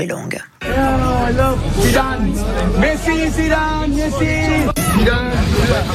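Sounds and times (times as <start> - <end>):
speech: 0.0 - 5.9
excited crowd of fans seeking autographs at a charity football and padel tournament: 0.6 - 5.9.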